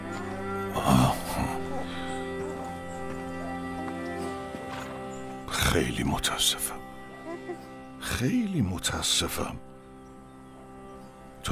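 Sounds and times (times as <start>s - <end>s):
cattle lowing in a barn: 0.0s - 5.0s
speech: 5.8s - 6.8s, 8.2s - 9.7s.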